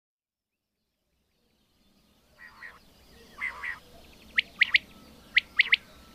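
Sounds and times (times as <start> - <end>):
common quail song: 0.5 - 6.1.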